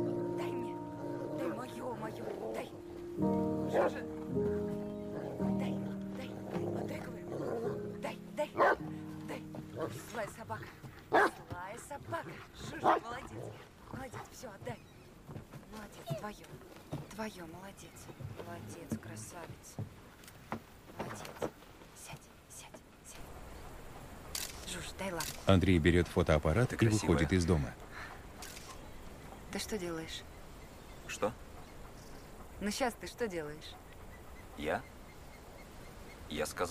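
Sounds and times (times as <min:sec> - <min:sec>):
people talking and whispering: 0:00.0 - 0:36.6
speech: 0:03.2 - 0:04.1, 0:25.5 - 0:27.9, 0:29.7 - 0:30.4, 0:31.2 - 0:31.4, 0:32.6 - 0:33.8, 0:34.6 - 0:34.9, 0:36.3 - 0:36.6
dog playing behind a door, barking and yipping: 0:03.7 - 0:04.1, 0:08.5 - 0:08.8, 0:11.1 - 0:11.5.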